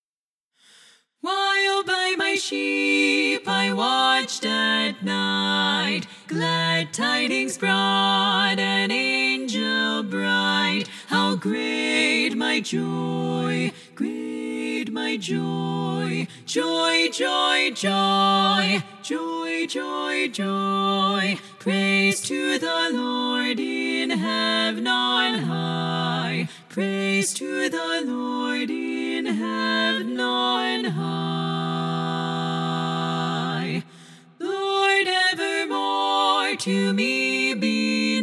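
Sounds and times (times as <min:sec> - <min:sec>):
SSAA choir lead voice singing: 0:01.2 - 0:38.2.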